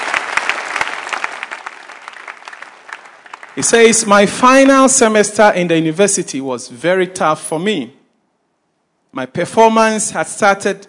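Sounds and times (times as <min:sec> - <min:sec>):
crowd at a religious meeting clapping: 0:00.0 - 0:05.0
speech: 0:03.6 - 0:08.0, 0:09.2 - 0:10.8.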